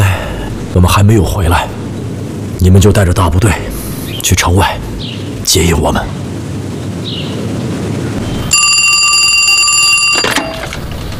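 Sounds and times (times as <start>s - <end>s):
low rumbling noise: 0.0s - 11.1s
speech: 0.8s - 1.8s, 2.6s - 4.8s, 5.5s - 6.2s
telephone bell ringing: 8.5s - 10.7s.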